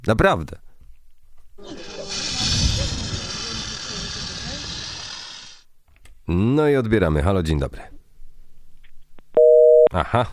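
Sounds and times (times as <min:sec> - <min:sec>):
speech: 0:00.1 - 0:00.7, 0:06.3 - 0:07.9, 0:09.9 - 0:10.3
telephone busy signal after caller hung up: 0:09.4 - 0:10.3.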